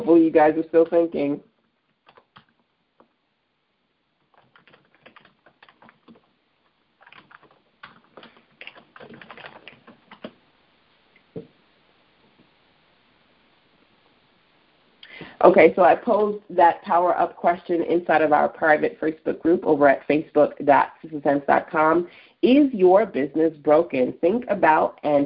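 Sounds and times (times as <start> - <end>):
speech: 0.1 - 1.5, 15.4 - 25.2
typing on a computer keyboard: 2.0 - 2.6, 4.3 - 6.3, 7.0 - 10.4.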